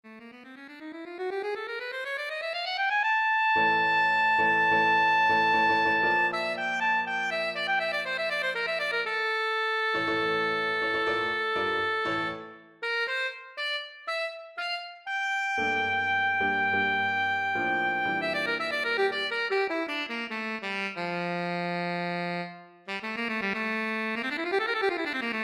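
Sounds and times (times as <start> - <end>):
alto saxophone: 0.1 - 25.4
piano: 3.5 - 9.1, 9.7 - 12.9, 15.2 - 20.1.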